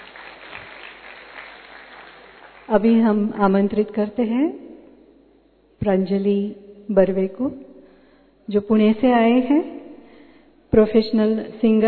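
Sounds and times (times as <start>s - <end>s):
audience applauding a performer at a live music event: 0.0s - 2.7s
speech: 2.7s - 4.6s, 5.8s - 7.7s, 8.5s - 9.8s, 10.7s - 11.8s.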